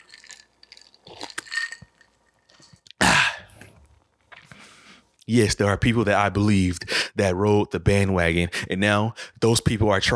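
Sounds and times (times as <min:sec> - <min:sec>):
faint clinks of a glass: 0:00.0 - 0:02.9
small slurping and swallowing noises of a drink being sipped: 0:00.0 - 0:05.0
speech: 0:05.3 - 0:10.1.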